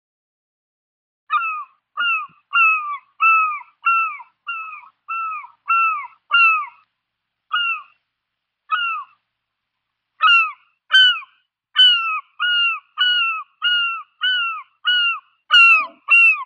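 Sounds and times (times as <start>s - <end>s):
bird calling in short nasal downslurred notes: 1.3s - 6.8s, 7.5s - 8.0s, 8.7s - 9.2s, 10.2s - 16.4s.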